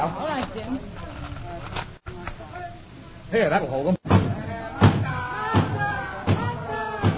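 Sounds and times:
speech: 0.0 - 1.1, 3.3 - 4.0
heavy pounding on a wooden door: 4.1 - 7.1.

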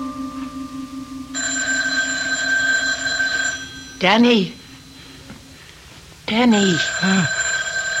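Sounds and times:
telephone ringing with electronic tones: 1.3 - 5.7, 6.3 - 7.9
speech: 4.0 - 4.6, 6.3 - 7.4.

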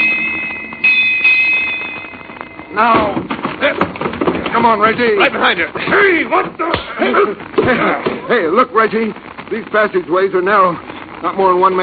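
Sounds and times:
bell striking with long ringing tones: 0.0 - 2.9
speech: 2.8 - 3.8, 4.6 - 11.8.

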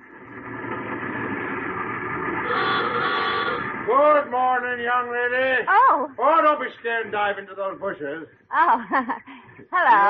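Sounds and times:
car engine rumbling as the car pulls up and stops: 0.0 - 7.5
speech: 3.9 - 10.0.

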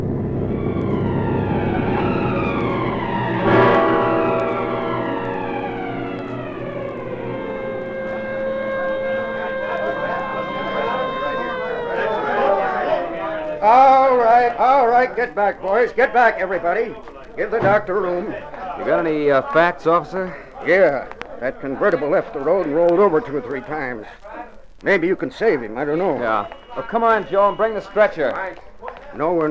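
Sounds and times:
ambulance engine rumble: 0.0 - 13.3
ambulance siren wailing at a car accident on a highway: 0.0 - 15.4, 25.9 - 28.4
laughter: 7.5 - 14.3, 17.6 - 23.6
speech: 15.0 - 29.4.

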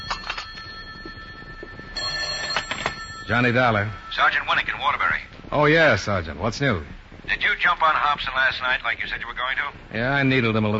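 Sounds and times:
old-style telephone bell ringing in an apartment: 0.0 - 5.4
speech: 3.3 - 10.7.

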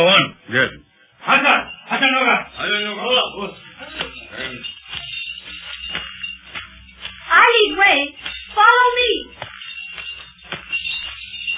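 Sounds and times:
speech: 0.0 - 1.4
bells ringing faintly: 0.9 - 11.5.

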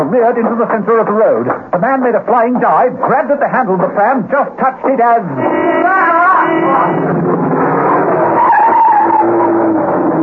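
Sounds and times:
speech: 0.0 - 7.4
van engine roar: 5.4 - 10.2
van tire screech skidding round a corner on a wet road: 5.4 - 10.2.

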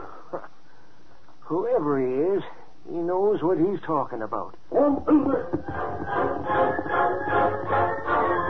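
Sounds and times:
speech: 1.5 - 2.6, 3.3 - 7.6
door creaking open with a knocking clatter: 5.4 - 8.4.

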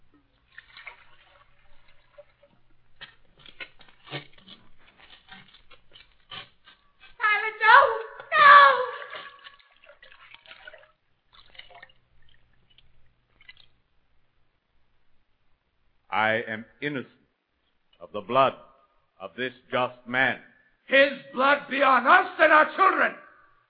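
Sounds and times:
water dripping and trickling: 0.0 - 7.2, 8.0 - 14.3
hands swishing and splashing in a basin of water: 0.4 - 7.1, 9.0 - 13.8
speech: 16.2 - 17.2, 18.1 - 18.7, 19.4 - 23.2.

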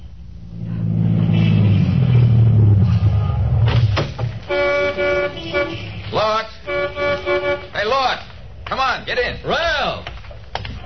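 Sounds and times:
brand-new Cadillac sedan engine rumble rolling to a stop on a busy New Orleans street corner: 0.0 - 10.8
car horn toot: 4.3 - 8.2.

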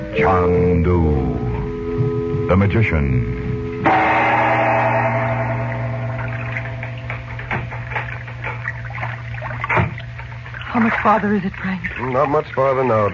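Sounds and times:
steady low hum of a sailboat: 0.0 - 13.1
speech: 0.2 - 1.3, 2.5 - 4.1, 10.8 - 13.1
river water swishing and lapping against a sailboat: 4.0 - 13.1.

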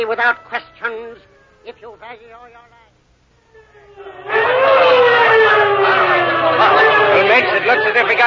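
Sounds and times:
police squad car siren wailing: 0.0 - 2.5, 3.4 - 8.2
speech: 0.0 - 2.8, 6.4 - 8.2
rushing roar: 3.5 - 8.2.

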